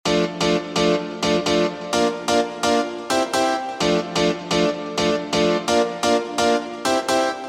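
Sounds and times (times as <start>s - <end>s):
synthesizer keys in EDM style: 0.1s - 7.4s.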